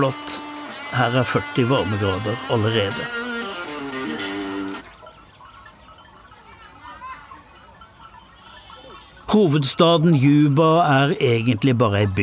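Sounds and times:
speech: 0.0s - 3.3s, 9.3s - 12.2s
goat bleating: 0.0s - 4.8s
voices: 0.0s - 10.0s.

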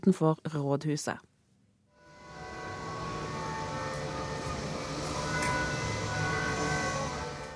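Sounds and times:
speech: 0.0s - 1.3s
carillon bells ringing from the Oslo City Hall tower in Norway: 2.0s - 7.5s.

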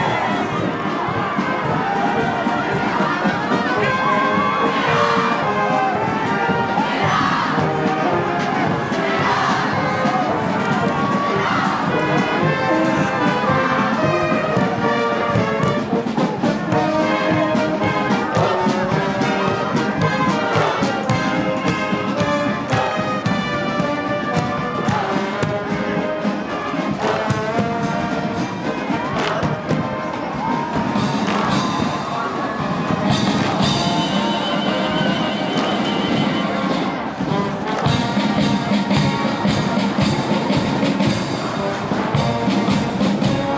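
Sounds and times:
crowd voices and cheering at a children's parade: 0.0s - 43.5s
marching band with horns and drums playing at a children's parade: 0.0s - 43.5s
sharp bright cymbal or whistle bursts: 33.1s - 36.9s.

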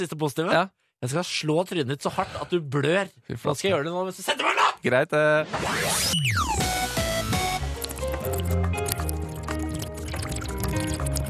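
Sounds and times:
speech: 0.0s - 6.8s
homemade wave splashing effect: 7.5s - 11.2s.

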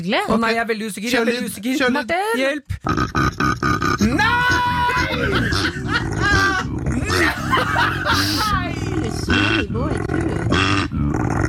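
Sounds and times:
speech: 0.0s - 3.2s, 7.1s - 11.3s
laughter: 4.0s - 10.7s
koala bellowing loudly with deep rasping grunts and snorting roars: 4.0s - 10.9s.

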